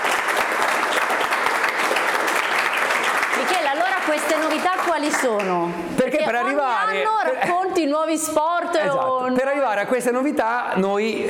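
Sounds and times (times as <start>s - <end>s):
sizable crowd applause: 0.0s - 5.6s
speech: 4.1s - 11.2s.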